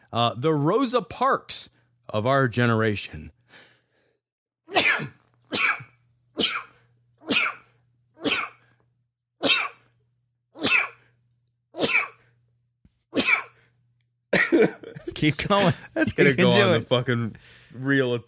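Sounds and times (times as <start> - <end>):
speech: 0.1 - 3.7, 15.2 - 18.2
person sneezing loudly in a rapid fit: 4.7 - 8.7, 9.4 - 9.9, 10.6 - 11.1, 11.8 - 12.3, 13.1 - 13.6
laughter: 14.4 - 16.9.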